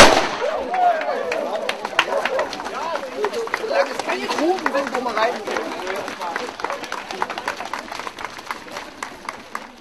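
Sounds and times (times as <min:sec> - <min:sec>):
starting pistol shot for race start: 0:00.0 - 0:00.5
crowd chatter: 0:00.0 - 0:09.7
patter of many runners setting off: 0:00.4 - 0:09.7
scattered crowd clapping: 0:00.5 - 0:09.7.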